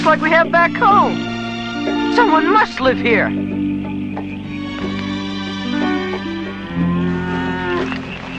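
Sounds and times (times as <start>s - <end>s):
speech: 0.0s - 3.6s
cow mooing: 5.6s - 8.3s.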